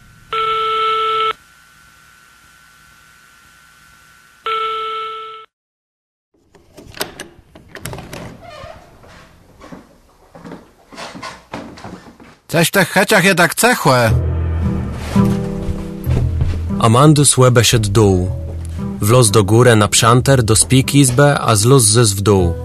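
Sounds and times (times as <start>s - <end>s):
telephone ringing with electronic bursts during a phone call: 0.3s - 1.4s, 4.5s - 5.5s
shuffling noises: 8.7s - 12.5s, 14.9s - 16.9s
speech: 12.5s - 14.3s, 16.8s - 22.6s.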